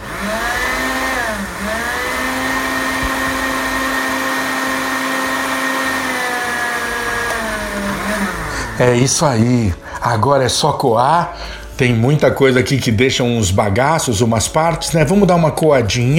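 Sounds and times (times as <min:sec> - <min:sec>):
blender blending turmeric drink: 0:00.0 - 0:09.3
speech: 0:08.8 - 0:16.1.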